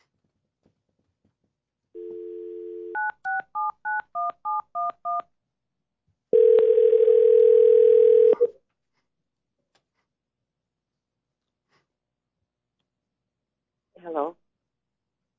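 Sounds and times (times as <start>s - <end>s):
telephone dial tone: 2.0s - 5.2s, 6.4s - 8.5s.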